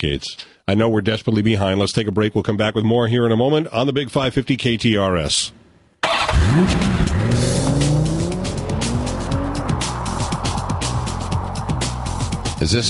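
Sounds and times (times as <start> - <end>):
speech: 0.0 - 5.6, 6.3 - 7.4, 12.6 - 12.8
rising engine revs in a radio traffic-report intro jingle: 6.0 - 12.6
busy sustained roaring motor noise: 6.3 - 12.4.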